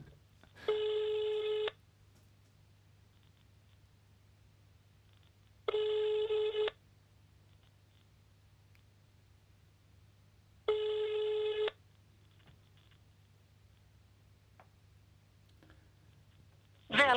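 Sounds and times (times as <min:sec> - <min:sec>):
outgoing phone call ringing tone: 0:00.7 - 0:01.8, 0:05.7 - 0:06.8, 0:10.7 - 0:11.8.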